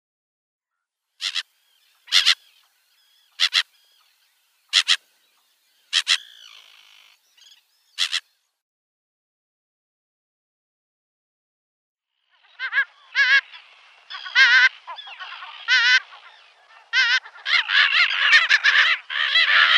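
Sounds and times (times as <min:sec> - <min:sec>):
Slender-billed Gull calls at nest: 0:01.2 - 0:01.5, 0:02.1 - 0:02.6, 0:03.3 - 0:03.8, 0:04.7 - 0:05.1, 0:05.9 - 0:08.3, 0:12.4 - 0:19.7.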